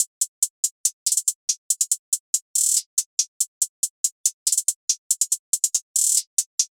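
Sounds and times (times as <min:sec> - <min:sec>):
hi-hat loop: 0:00.0 - 0:06.7.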